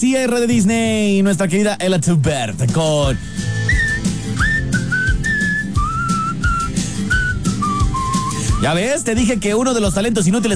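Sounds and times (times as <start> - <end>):
speech: 0.0 - 3.6, 8.6 - 10.5
person whistling a melody: 3.2 - 10.5.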